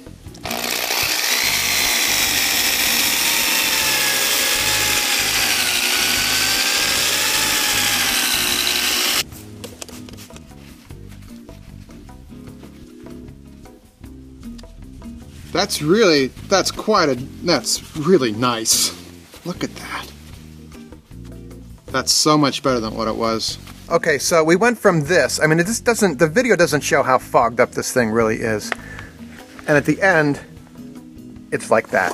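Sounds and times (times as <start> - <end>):
power drill buffing with polishing compound: 0.4 - 9.2
speech: 15.6 - 19.7, 22.0 - 29.0, 29.7 - 30.5, 31.5 - 32.1.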